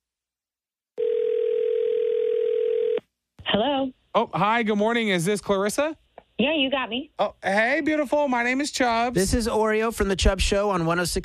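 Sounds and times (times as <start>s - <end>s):
telephone ringback tone: 1.0s - 3.0s
speech: 3.6s - 11.2s.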